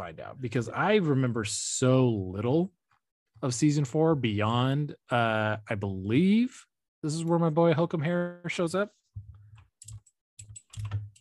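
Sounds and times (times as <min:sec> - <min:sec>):
speech: 0:00.0 - 0:02.8, 0:03.4 - 0:09.3
rapid typing on a computer keyboard: 0:09.6 - 0:11.1.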